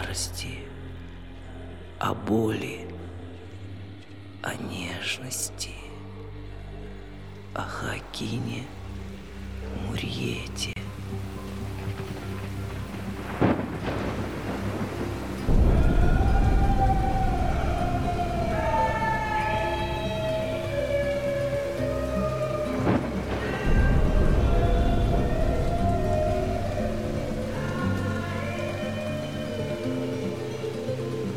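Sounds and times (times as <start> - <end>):
steady rain: 0.0 - 31.3
speech: 0.2 - 0.7, 2.0 - 2.9, 4.4 - 5.8, 7.6 - 8.8, 9.6 - 11.3
thunder rumbling: 11.0 - 31.3
faint wailing tones: 13.8 - 31.3.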